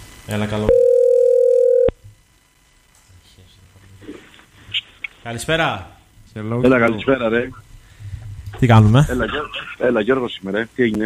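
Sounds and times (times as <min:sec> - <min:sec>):
speech: 0:00.3 - 0:00.8, 0:05.3 - 0:07.6, 0:08.6 - 0:11.0
telephone line tone of incoming call: 0:00.7 - 0:02.0.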